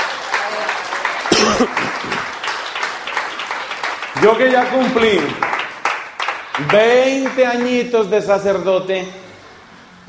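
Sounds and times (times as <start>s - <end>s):
crowd applauding: 0.0s - 8.2s
person coughing: 1.3s - 2.0s
speech: 1.6s - 2.4s, 4.2s - 5.5s, 6.6s - 9.2s.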